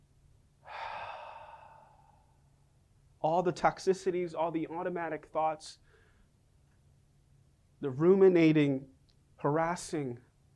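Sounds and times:
deep exhale: 0.6s - 2.6s
speech: 3.2s - 5.8s, 7.8s - 10.2s.

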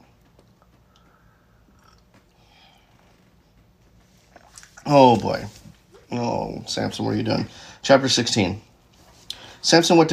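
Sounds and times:
person sipping a drink: 0.9s - 3.2s, 4.2s - 4.8s
speech: 4.9s - 8.7s, 9.6s - 10.1s.

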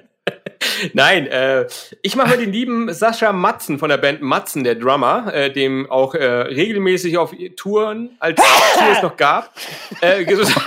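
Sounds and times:
laughter: 0.1s - 0.9s, 9.7s - 10.6s
speech: 0.8s - 10.6s
single sharp sneeze: 8.4s - 9.1s.

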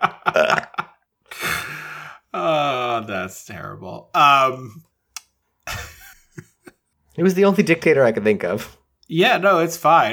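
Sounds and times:
laughter: 0.0s - 2.7s, 5.7s - 6.7s
burp sound effect: 0.1s - 3.1s
speech: 3.1s - 4.9s, 7.2s - 10.1s.

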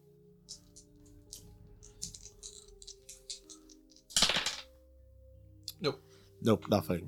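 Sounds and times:
two dice rattling: 0.5s - 4.6s
two dice landing in a brief clatter: 2.0s - 4.7s
speech: 5.8s - 7.0s.

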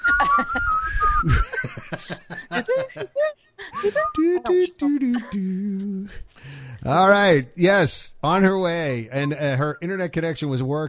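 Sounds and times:
person whistling a short jaunty tune: 0.0s - 1.4s, 3.8s - 4.6s
people laughing and chuckling: 0.0s - 5.6s
giggly humming voices: 0.0s - 6.3s
speech: 0.2s - 3.1s, 3.8s - 6.2s, 6.9s - 10.8s.

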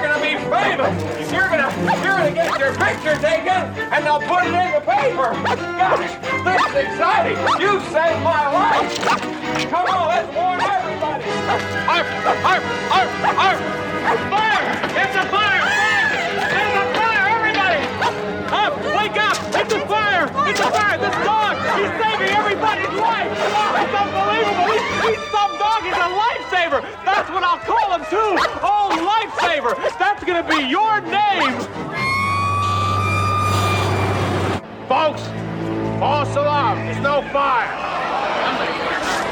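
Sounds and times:
voices talking: 0.0s - 34.0s, 34.8s - 39.3s
busy dense noise: 0.0s - 39.3s
dog barking excitedly: 5.4s - 6.8s, 8.6s - 9.2s, 9.8s - 14.4s, 18.0s - 18.2s, 20.4s - 25.2s, 25.8s - 26.2s, 27.2s - 30.7s
laughter: 9.5s - 30.8s, 37.2s - 39.3s.

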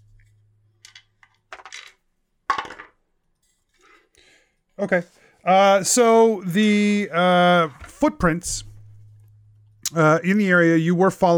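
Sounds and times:
dice picked up and rolled onto a hard surface: 0.8s - 3.0s
speech: 4.8s - 8.7s, 9.9s - 11.3s.

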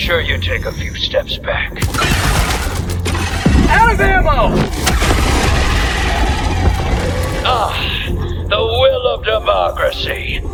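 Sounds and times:
speech: 0.1s - 2.5s, 3.7s - 5.0s, 7.0s - 8.0s, 9.1s - 10.5s
explosion from a stratagem strike in a video game: 2.0s - 8.2s.

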